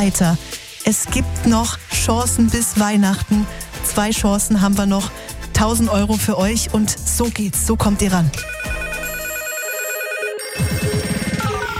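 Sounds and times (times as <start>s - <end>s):
speech: 0.0s - 8.6s
telephone ringing: 8.4s - 11.7s.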